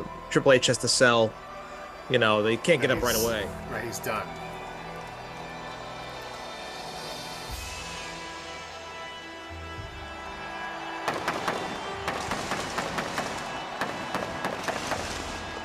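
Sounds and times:
speech: 0.3 - 1.5, 2.1 - 4.5
arena fireworks bursting with sharp bangs and crackles: 10.6 - 15.6.

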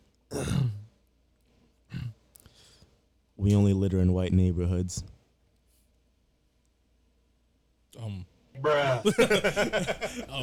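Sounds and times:
man clearing throat: 0.3 - 0.9, 1.9 - 2.2
speech: 3.4 - 5.2, 8.6 - 10.4
laughter: 8.8 - 10.4.

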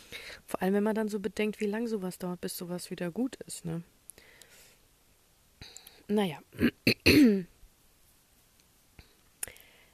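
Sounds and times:
speech: 0.5 - 4.0, 6.1 - 7.5
person clearing throat: 6.6 - 7.5.

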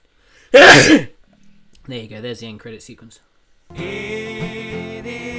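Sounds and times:
speech: 0.5 - 1.1, 1.9 - 5.2
person sneezing: 0.5 - 1.2.

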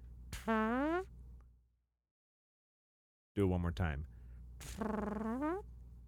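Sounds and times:
buzzy fart noise blown with the lips: 0.3 - 1.1, 4.6 - 5.7
speech: 3.4 - 5.7.

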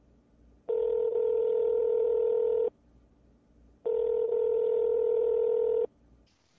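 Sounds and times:
mobile phone ringing in trouser pocket with two long electronic tones: 0.7 - 2.7, 3.9 - 5.9.

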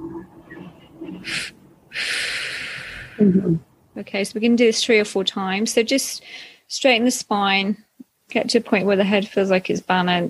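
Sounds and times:
person inhaling through nose: 1.2 - 3.6
long exhale through mouth: 1.3 - 3.3
speech: 3.2 - 10.2.

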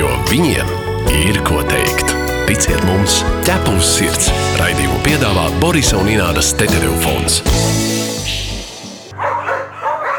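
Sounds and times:
speech: 0.3 - 1.9, 2.5 - 8.4
dog barking: 9.1 - 10.1.

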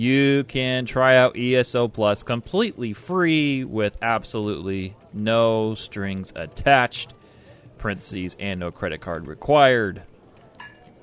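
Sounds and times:
speech: 0.0 - 7.2, 7.8 - 10.1
object knocked by a cat into a small metal cup: 10.6 - 10.9.

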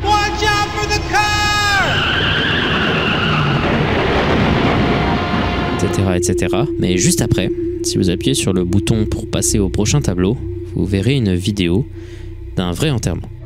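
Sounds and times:
heavy car crash: 0.6 - 6.8
loud drawn-out car tire screech: 1.5 - 5.8
speech: 6.0 - 13.4.

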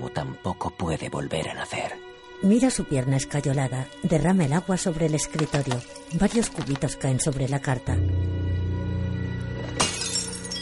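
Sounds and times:
steady tonal background: 0.0 - 10.6
speech: 0.1 - 8.2
drinking glass fragments settling: 5.3 - 6.8, 9.6 - 10.6
drinking glass smashing against the edge of a desk: 5.4 - 6.8, 9.6 - 10.6.

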